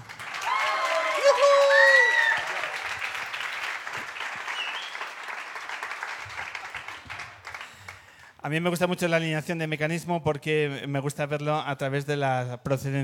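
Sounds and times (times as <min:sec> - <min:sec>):
audience clapping for a five-piece band: 0:00.0 - 0:08.4
cheers and whoops: 0:00.2 - 0:03.2
speech: 0:08.5 - 0:13.0.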